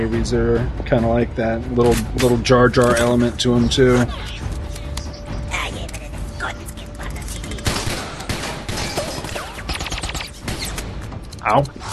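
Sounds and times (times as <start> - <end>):
speech: 0.0 - 4.5, 11.5 - 11.8
gunfire in a film scene: 7.6 - 11.0.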